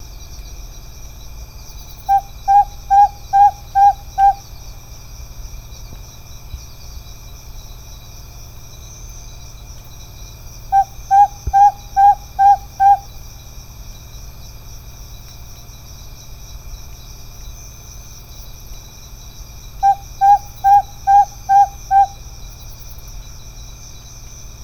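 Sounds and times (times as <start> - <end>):
Otus rutilus Madagascar scops owl calling: 2.1 - 4.6, 10.7 - 13.2, 19.8 - 22.2.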